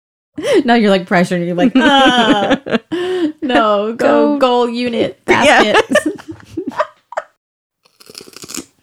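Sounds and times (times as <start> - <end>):
speech: 0.4 - 6.2
laughter: 1.6 - 4.1, 4.9 - 7.4
crunch of someone biting into crisp food: 7.8 - 8.8.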